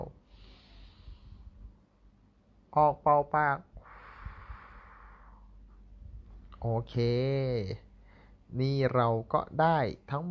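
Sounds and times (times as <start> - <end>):
long steady inhalation through the nose during a lung breathing exercise: 0.2 - 1.6, 3.8 - 5.6
speech: 2.8 - 3.7, 6.6 - 7.8, 8.5 - 10.2.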